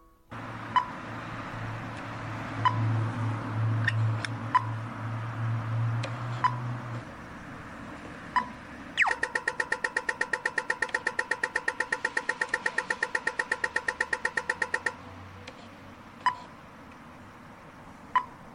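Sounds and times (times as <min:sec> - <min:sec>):
Australian pedestrian crossing signal ticking: 0:00.4 - 0:01.2, 0:01.8 - 0:07.1, 0:08.3 - 0:15.6, 0:16.2 - 0:16.5, 0:18.0 - 0:18.5.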